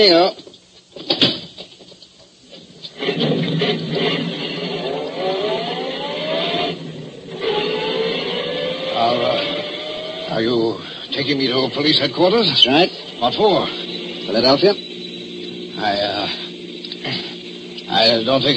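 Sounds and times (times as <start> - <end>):
speech: 0.0 - 1.3, 11.2 - 14.9, 15.8 - 16.4, 18.0 - 18.5
car engine starting, revving and pulling away: 3.0 - 18.5
sharp clicks: 16.8 - 17.0.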